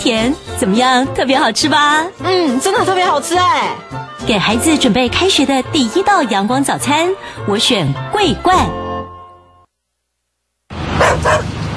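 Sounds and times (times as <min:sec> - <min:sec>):
speech: 0:00.0 - 0:08.8
dog barking: 0:11.0 - 0:11.5.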